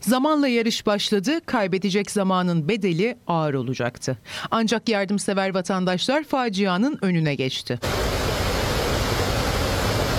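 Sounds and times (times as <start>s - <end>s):
speech: 0.0s - 8.2s
waterfall in the Çatak district of Van, Turkey: 7.8s - 10.1s.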